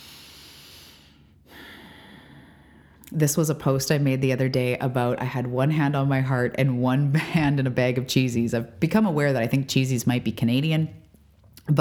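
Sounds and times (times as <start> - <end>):
slow deep breathing: 0.0 - 3.0
speech: 3.1 - 11.0.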